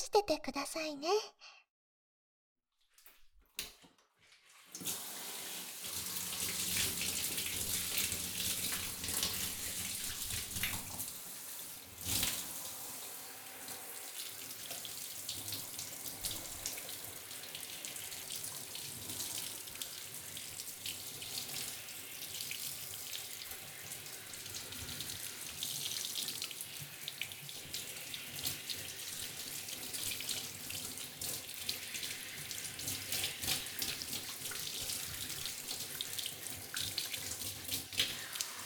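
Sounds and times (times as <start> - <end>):
speech: 0.2 - 1.6
tap water rinsing shampoo foam from hair: 2.9 - 38.6.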